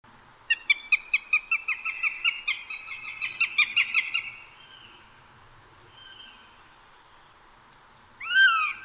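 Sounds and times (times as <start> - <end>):
Eurasian jay Garrulus glandarius clicking harmonic notes and call: 0.5 - 4.3, 8.2 - 8.8.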